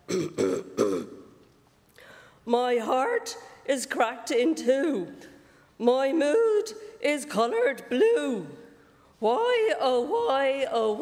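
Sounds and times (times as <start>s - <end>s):
man clearing his throat at a microphone: 0.0s - 1.3s
speech: 2.5s - 8.6s, 9.2s - 11.0s.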